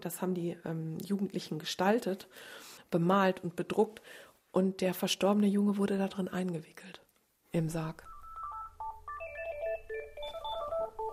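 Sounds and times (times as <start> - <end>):
speech: 0.0 - 8.1
telephone ringing with a bright electronic beeping melody: 8.0 - 11.1.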